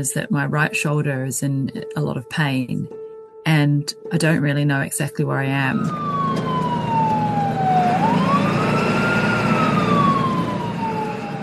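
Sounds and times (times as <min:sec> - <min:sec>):
speech: 0:00.0 - 0:06.2
ambulance siren wailing: 0:05.6 - 0:11.4
steady low rumble of engine and road noise: 0:05.6 - 0:11.4.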